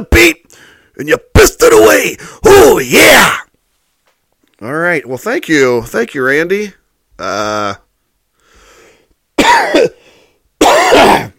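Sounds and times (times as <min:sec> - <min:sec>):
speech: 0:00.0 - 0:03.4, 0:04.6 - 0:07.8
faint breath: 0:00.5 - 0:01.0, 0:08.3 - 0:09.2, 0:10.0 - 0:10.5
person coughing: 0:09.4 - 0:10.0, 0:10.6 - 0:11.3.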